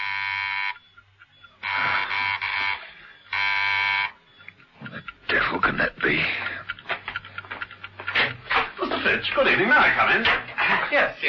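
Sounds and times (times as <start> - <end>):
loud harsh electric door buzzer ringing in a coded pattern: 0.0 - 0.8, 1.6 - 4.2
faint low hum: 0.0 - 11.2
speech: 9.2 - 11.2.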